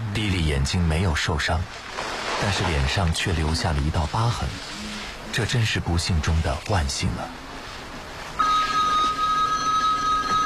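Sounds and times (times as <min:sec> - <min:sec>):
speech: 0:00.2 - 0:07.4
telephone ringing with a steady electronic tone in an office: 0:08.4 - 0:10.4.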